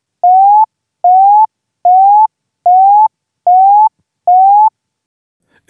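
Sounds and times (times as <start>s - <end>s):
small alarm alert with voice announcement: 0.2s - 4.7s.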